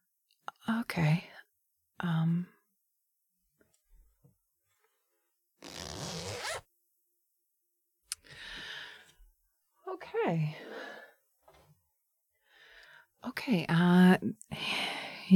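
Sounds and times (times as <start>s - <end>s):
speech: 0.7s - 1.3s, 2.0s - 2.5s, 10.2s - 10.6s, 13.5s - 15.3s
clothing zipper being pulled: 5.6s - 6.7s.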